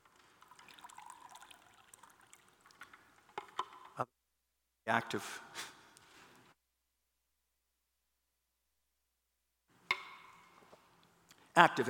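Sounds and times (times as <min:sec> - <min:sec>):
water being poured or sipped: 0:00.0 - 0:03.4
speech: 0:04.9 - 0:05.7, 0:11.6 - 0:11.8.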